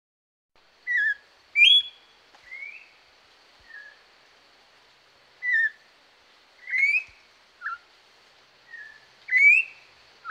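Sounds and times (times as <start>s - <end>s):
orange-backed troupial whistled song in the Pantanal: 0.9s - 2.9s, 6.6s - 7.8s, 8.7s - 10.2s.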